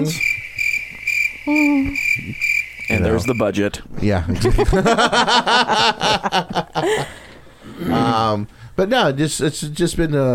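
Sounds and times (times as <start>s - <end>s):
speech: 0.0s - 0.3s, 1.5s - 10.3s
low hooting tone: 0.0s - 3.6s
cricket chirping: 0.0s - 3.7s
laughter: 4.2s - 8.4s.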